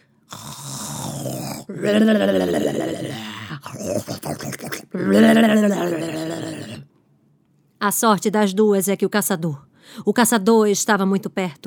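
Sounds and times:
human voice imitating loud rattling snoring of a sleeping wolf: 0.3s - 6.9s
speech: 1.7s - 6.6s, 7.9s - 11.6s.

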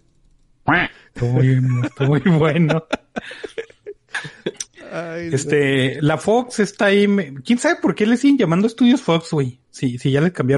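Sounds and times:
loud nasal duck quacks sound effect: 0.7s - 1.0s
speech: 0.7s - 3.5s, 5.0s - 10.5s
laughter: 1.2s - 5.7s.

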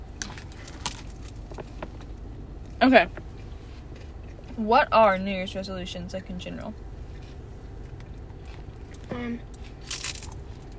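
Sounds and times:
crackly chewing: 0.0s - 4.6s, 7.1s - 10.7s
speech: 2.8s - 3.2s, 4.6s - 6.8s, 9.1s - 9.5s
crunchy bite of food: 8.4s - 10.7s.

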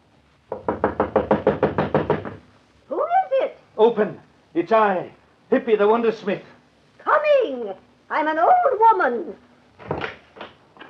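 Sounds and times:
knocking on a fortune teller's door: 0.5s - 2.5s
speech: 3.8s - 6.5s, 7.5s - 9.9s.

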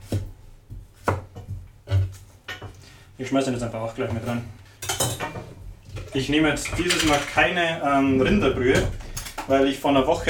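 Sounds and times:
knife chopping garlic on a board: 0.0s - 2.8s
speech: 3.2s - 4.6s, 6.1s - 10.2s.

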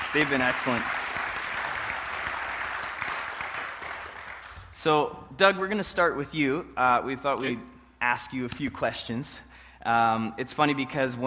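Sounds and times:
crowd clapping: 0.0s - 4.8s
speech: 0.1s - 1.1s, 4.8s - 11.2s.

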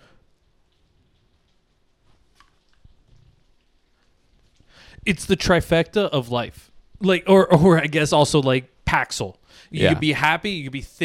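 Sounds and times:
rain pattering and clicking on a surface: 0.0s - 7.0s
speech: 5.0s - 11.0s
laughter: 9.8s - 10.0s.

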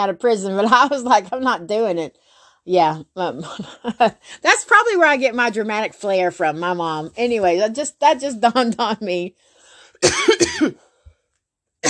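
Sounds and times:
speech: 0.0s - 10.8s
person coughing from allergies: 10.0s - 10.9s.

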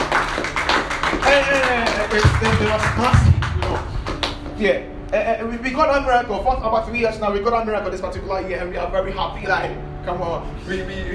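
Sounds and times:
audience clapping hands: 0.0s - 4.6s
speech: 1.4s - 3.3s, 4.6s - 11.1s.

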